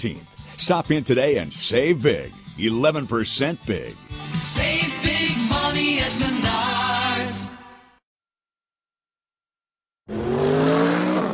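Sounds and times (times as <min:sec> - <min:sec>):
speech: 0:00.0 - 0:06.3
2015 Mercedes-Benz CLA engine accelerating out of a hairpin turn: 0:10.1 - 0:11.3.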